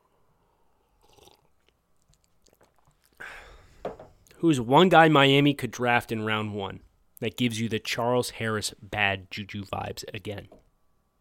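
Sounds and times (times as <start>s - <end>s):
person sipping a drink: 0.4s - 3.5s
wet mouth and swallowing noises: 1.0s - 3.2s
speech: 4.4s - 10.6s.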